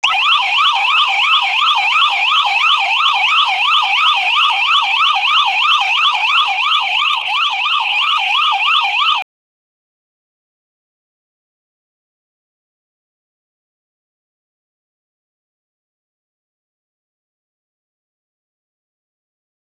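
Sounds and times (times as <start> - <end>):
loud short siren alert: 0.0 - 9.2.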